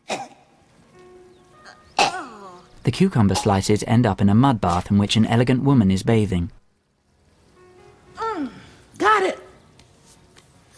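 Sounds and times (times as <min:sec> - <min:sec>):
woman clearing her throat: 0:00.0 - 0:00.4, 0:01.7 - 0:02.6
speech: 0:02.8 - 0:06.6.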